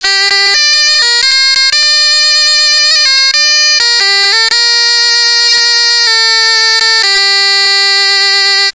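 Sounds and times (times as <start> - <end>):
bombarde in G playing: 0.0 - 8.7.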